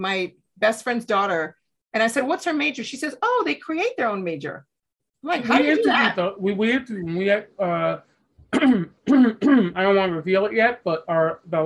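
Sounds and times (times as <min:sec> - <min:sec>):
speech: 0:00.0 - 0:11.6
person clearing throat into a microphone: 0:08.5 - 0:09.9.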